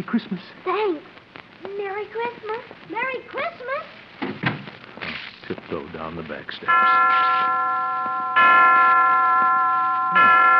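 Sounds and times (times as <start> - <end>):
speech: 0.0 - 1.1, 2.0 - 4.0, 5.7 - 7.9
hospital clock chimes striking: 6.7 - 10.5.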